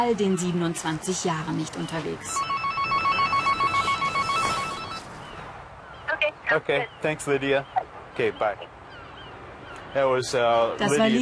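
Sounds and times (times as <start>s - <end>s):
speech: 0.0s - 3.0s, 6.5s - 8.8s, 10.0s - 11.2s
electronic telephone ringing with an incoming call: 2.4s - 5.1s.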